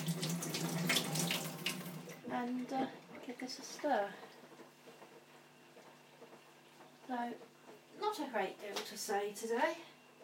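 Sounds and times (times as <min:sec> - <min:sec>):
water spatter from hand washing: 0:00.0 - 0:02.2
water running from a tap while hands are washed: 0:00.0 - 0:02.7
speech: 0:02.4 - 0:04.4, 0:07.1 - 0:09.9.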